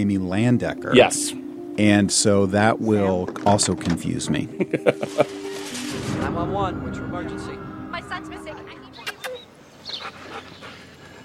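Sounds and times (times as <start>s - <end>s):
speech: 0.0s - 9.0s
laughter: 4.5s - 5.4s
dog panting and whimpering: 9.1s - 11.2s.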